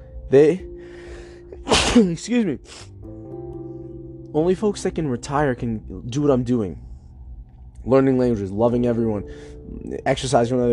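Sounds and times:
speech: 0.3s - 0.7s, 1.7s - 2.9s, 4.3s - 6.9s, 7.8s - 10.7s
loud sneeze: 1.7s - 2.1s.

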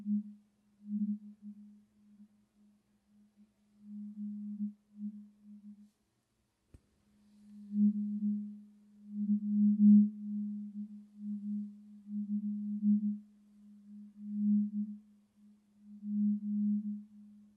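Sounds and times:
pure low tone from a tuning fork or singing bowl: 0.0s - 6.0s, 7.2s - 17.5s.

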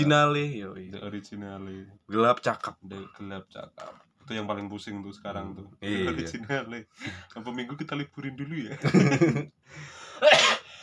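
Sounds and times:
speech: 0.0s - 10.6s
laughter: 8.7s - 9.5s
harsh cough: 10.2s - 10.7s.

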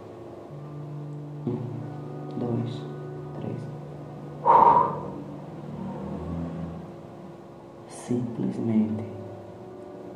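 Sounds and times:
quiet low hum: 0.0s - 10.1s
speech: 1.4s - 1.8s, 2.5s - 2.9s, 8.1s - 9.2s
short puff of breath blown into microphone: 4.4s - 5.2s.

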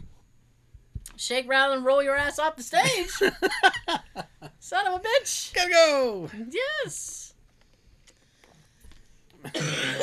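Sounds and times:
speech: 1.2s - 7.2s
person clearing throat: 9.4s - 10.0s
harsh cough: 9.5s - 10.0s.

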